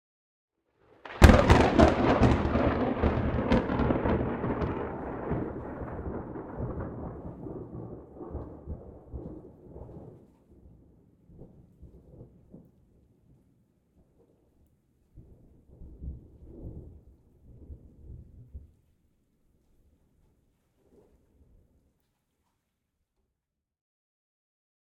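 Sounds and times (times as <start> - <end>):
thunder: 1.0 - 13.0, 15.2 - 18.7.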